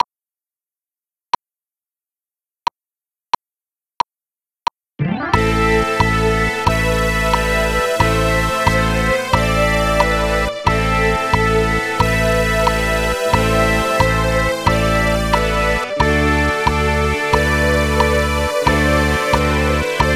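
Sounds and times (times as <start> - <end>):
rock keyboard: 5.0 - 20.1.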